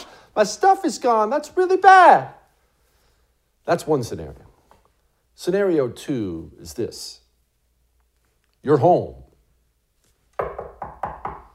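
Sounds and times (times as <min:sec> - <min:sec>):
speech: 0:00.4 - 0:02.4, 0:03.7 - 0:04.5, 0:05.4 - 0:07.2, 0:08.6 - 0:09.2
firm knocks on a wooden door: 0:10.4 - 0:11.5.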